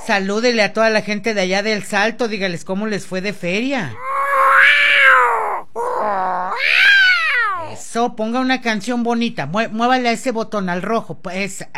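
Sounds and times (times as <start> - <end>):
speech: 0.1 - 4.9, 7.9 - 11.7
cat meowing: 4.0 - 7.8.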